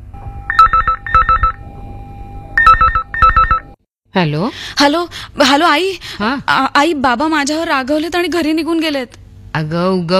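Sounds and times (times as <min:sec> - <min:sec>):
telephone ringing on an outgoing call: 0:00.5 - 0:03.8
speech: 0:04.2 - 0:10.1.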